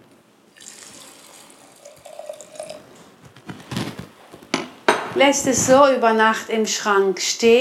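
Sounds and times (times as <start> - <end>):
water pouring into a jar of grain: 0.5 - 3.0
speech: 5.2 - 7.5.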